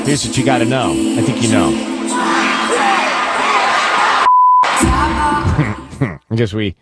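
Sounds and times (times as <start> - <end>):
speech: 0.0 - 2.4, 6.3 - 6.8
singer's voice at a live concert: 0.0 - 3.4, 4.8 - 6.2
roaring concert crowd cheering: 1.6 - 5.5
short steady beep: 4.3 - 4.7.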